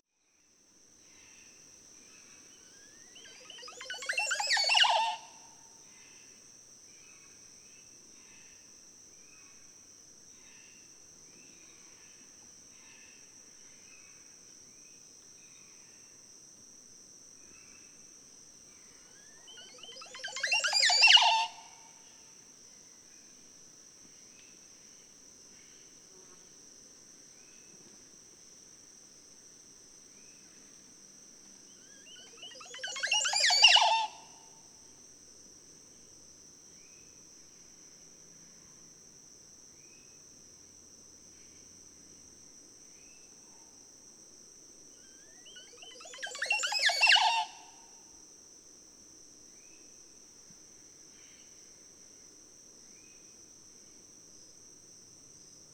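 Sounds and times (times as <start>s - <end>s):
Montezuma oropendola calling: 2.7s - 5.4s, 19.2s - 21.9s, 31.8s - 34.4s, 45.0s - 47.7s.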